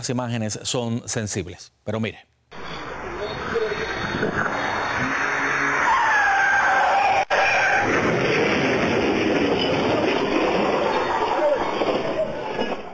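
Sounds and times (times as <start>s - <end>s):
speech: 0.0s - 4.4s
steady loud roar of traffic noise: 2.5s - 12.9s
speeding car tires screeching: 2.7s - 12.9s.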